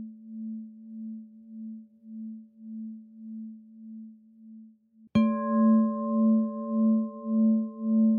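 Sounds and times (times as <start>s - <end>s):
singing bowl ringing: 5.2s - 8.1s.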